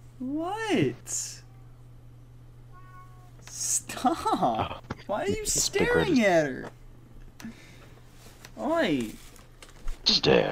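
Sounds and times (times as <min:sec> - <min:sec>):
steady low electrical hum: 0:00.0 - 0:10.5
speech: 0:00.2 - 0:01.4, 0:04.0 - 0:06.8, 0:08.6 - 0:09.2, 0:10.1 - 0:10.5
cat meowing: 0:02.7 - 0:03.4
laughter: 0:04.0 - 0:06.6.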